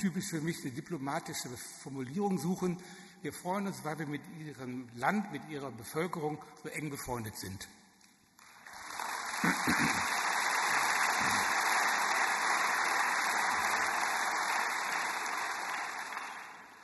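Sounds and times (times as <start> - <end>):
speech: 0.0 - 7.8
audience applause in a large hall: 8.4 - 16.8.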